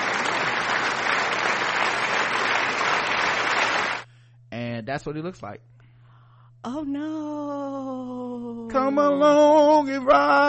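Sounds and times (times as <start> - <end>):
recorded applause sound effect of crowd clapping: 0.0 - 4.1
speech: 4.9 - 5.8, 6.6 - 10.4.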